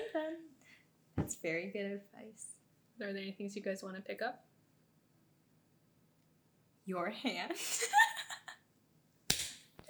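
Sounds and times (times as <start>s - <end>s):
speech: 0.2s - 0.6s, 1.2s - 4.5s, 6.8s - 8.0s
hand slap: 9.3s - 9.7s.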